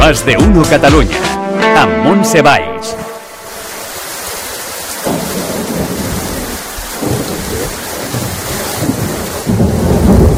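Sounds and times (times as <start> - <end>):
speech: 0.1 - 3.1
heavy rain during a night storm in Catalonia: 3.3 - 10.3
thunder rumbling during a night storm in Catalonia: 5.0 - 10.3.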